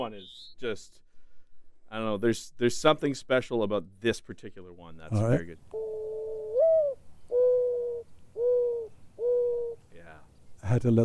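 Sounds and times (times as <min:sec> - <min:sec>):
speech: 0:00.0 - 0:01.0, 0:01.9 - 0:06.2, 0:10.7 - 0:11.0
mourning dove cooing: 0:05.7 - 0:10.0.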